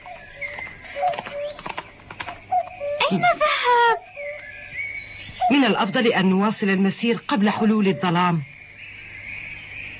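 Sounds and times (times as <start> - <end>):
horse hooves clip-clopping: 0.0 - 2.4
speech: 3.1 - 4.0, 5.5 - 8.5.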